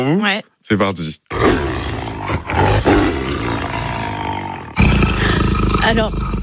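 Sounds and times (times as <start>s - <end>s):
speech: 0.0s - 1.6s, 5.8s - 6.4s
loud deep rumbling roar: 1.3s - 6.4s.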